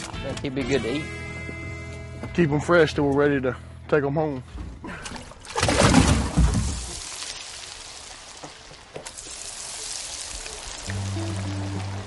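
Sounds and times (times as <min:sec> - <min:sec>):
speech: 0:00.4 - 0:01.2, 0:02.4 - 0:04.6
wild fish caught that day sizzling in hot oil: 0:06.7 - 0:12.0.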